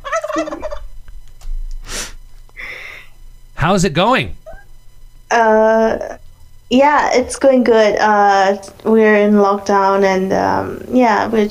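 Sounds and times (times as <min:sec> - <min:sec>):
wild turkey gobbling: 0:00.0 - 0:00.9
speech: 0:00.4 - 0:00.6, 0:03.6 - 0:04.4, 0:05.3 - 0:11.4.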